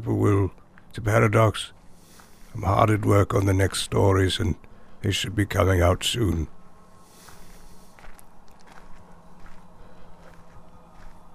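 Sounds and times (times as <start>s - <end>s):
speech: 0.0s - 1.8s, 2.6s - 6.6s
low hum: 0.0s - 11.3s
footsteps of someone walking: 2.0s - 2.6s, 7.0s - 11.3s.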